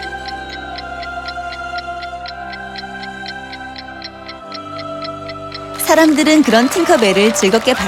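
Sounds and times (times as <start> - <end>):
palace clock sustained ringing tone: 0.0 - 6.3
palace clock ticking: 0.0 - 7.6
speech: 5.9 - 7.8.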